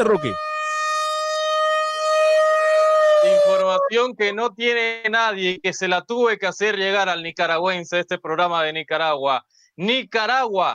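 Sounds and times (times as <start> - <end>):
speech: 0.0 - 0.5, 3.5 - 10.7
civil defense siren wailing: 0.0 - 3.9.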